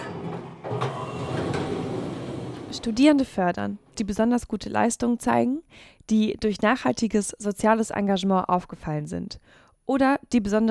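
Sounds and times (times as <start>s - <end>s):
sharp clunks: 0.0s - 3.3s
train or subway carriage door sliding open: 0.0s - 3.3s
speech: 2.7s - 10.6s.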